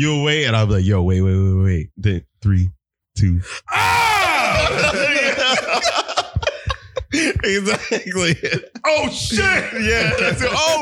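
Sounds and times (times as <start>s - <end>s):
speech: 0.0s - 4.0s, 7.1s - 10.7s
person screaming: 3.7s - 5.1s
laughter: 3.8s - 10.7s.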